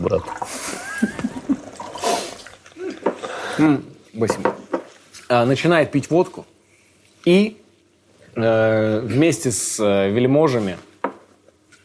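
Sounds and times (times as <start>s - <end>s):
drink being poured into a glass: 0.0s - 3.2s
speech: 0.1s - 0.7s, 3.6s - 4.5s, 5.3s - 6.5s, 7.2s - 7.6s, 8.4s - 10.9s
laughter: 0.6s - 1.8s.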